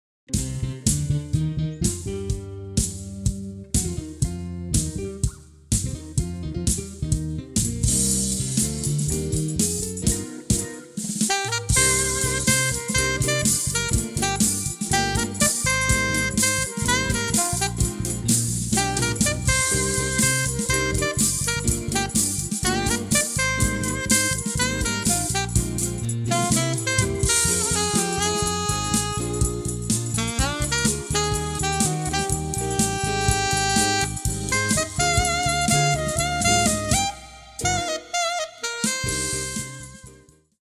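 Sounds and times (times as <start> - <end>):
retro groove alto saxophone: 0.3 - 40.6.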